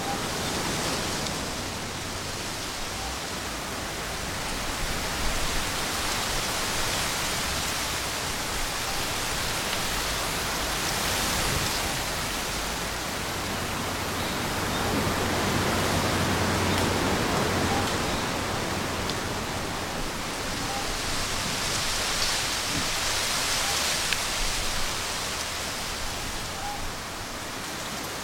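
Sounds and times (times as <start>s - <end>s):
wind rustling through a sugarcane field: 0.0s - 28.2s.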